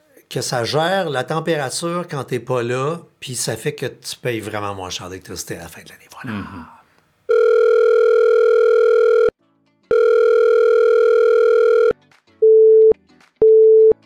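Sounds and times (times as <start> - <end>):
speech: 0.3 - 6.8
telephone line tones before a voicemail greeting: 7.3 - 9.3, 9.9 - 14.0.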